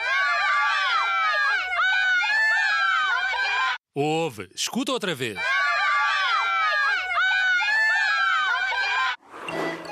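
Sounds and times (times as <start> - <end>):
group of children screaming: 0.0 - 3.8, 5.4 - 9.2
adult speaking: 4.0 - 5.4
speech: 4.0 - 5.6.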